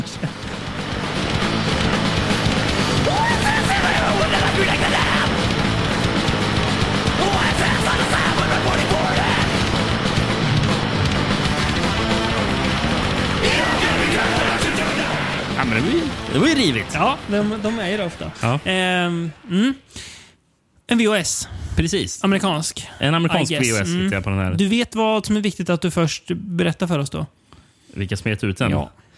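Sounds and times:
death metal song with distorted instruments and harsh vocals: 0.3 - 18.4
laughter: 3.4 - 5.3
speech: 16.5 - 20.2, 20.9 - 29.0.

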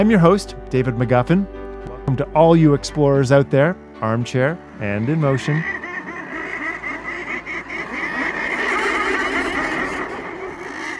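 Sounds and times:
speech: 0.0 - 5.8
thousands of murres nesting on the cliffs of Coates Island calling: 4.0 - 10.9.

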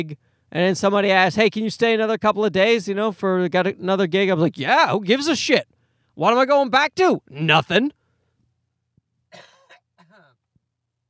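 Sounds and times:
speech: 0.0 - 8.0
person coughing with a raspy throat-clearing tail: 9.3 - 10.3.

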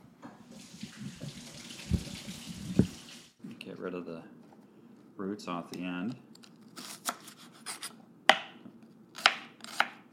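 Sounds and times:
tap water running while washing vegetables with roots: 0.3 - 3.4
speech: 3.9 - 4.4, 5.2 - 6.2.

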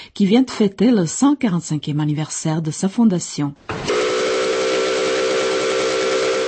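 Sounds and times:
speech: 0.2 - 3.9
historic riverboat steam whistle blast on the Vltava in Prague: 3.7 - 6.4.

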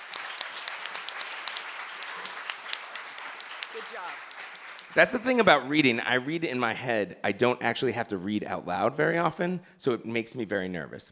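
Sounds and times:
audience applause welcoming an author at a literary reading: 0.0 - 5.6
speech: 3.8 - 11.1.

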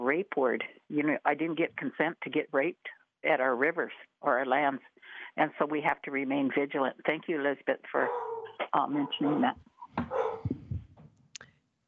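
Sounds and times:
speech: 0.1 - 10.6
dog barking at home: 8.0 - 10.6.

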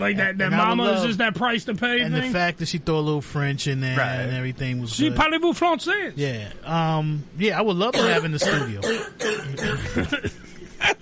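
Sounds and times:
speech: 0.0 - 11.0
person coughing in short harsh bursts: 8.0 - 10.2.

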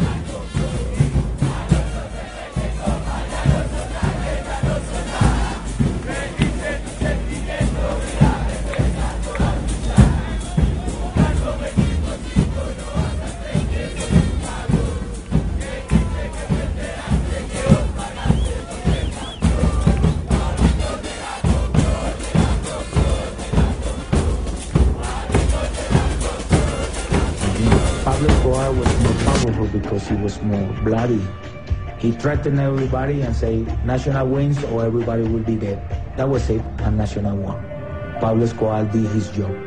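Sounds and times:
large stadium crowd of football supporters chanting: 0.0 - 30.7
speech: 30.5 - 31.4, 32.0 - 39.6.

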